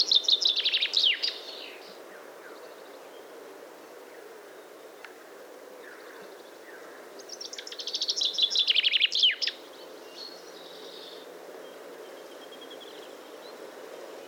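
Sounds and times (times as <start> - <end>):
common chaffinch Fringilla coelebs singing: 0.0 - 3.3, 5.8 - 13.6.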